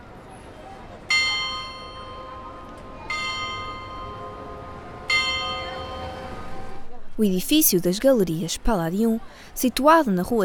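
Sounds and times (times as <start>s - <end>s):
street ambience hum on Rua de Santa Catarina: 0.0s - 10.4s
carillon clock with moving figures chiming the hour: 1.1s - 6.7s
speech: 7.2s - 10.4s.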